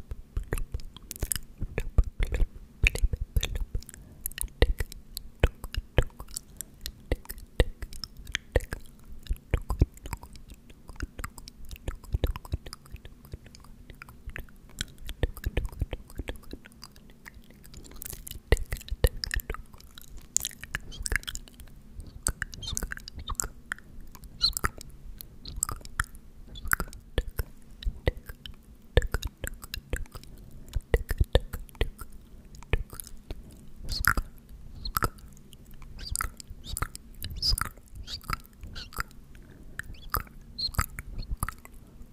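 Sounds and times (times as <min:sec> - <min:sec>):
faint low hum: 0:00.0 - 0:42.1
mouth sounds of tk and sk: 0:07.7 - 0:23.8, 0:25.5 - 0:41.8.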